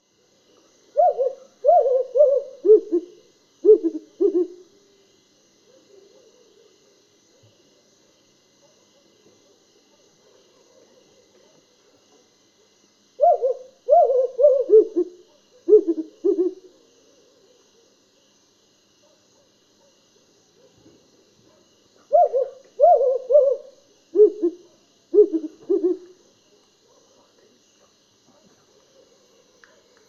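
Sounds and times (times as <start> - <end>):
African wood owl calling: 0.9 - 4.7, 13.2 - 16.7, 22.1 - 26.2.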